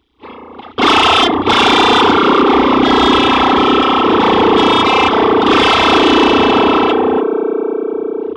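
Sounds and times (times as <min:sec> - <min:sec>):
synth modulated by LFO: 0:00.8 - 0:07.4.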